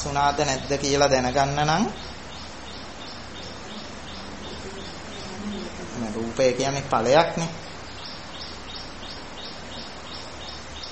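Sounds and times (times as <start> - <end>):
speech: 0.0 - 2.1, 6.0 - 7.7
bird chirping: 0.0 - 10.9.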